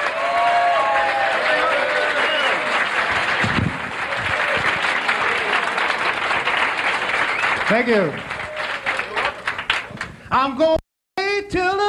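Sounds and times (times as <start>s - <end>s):
cheers and whoops: 0.0s - 3.2s, 4.0s - 6.0s
room full of people applauding: 0.0s - 10.2s
speech: 7.7s - 8.3s, 10.3s - 10.8s.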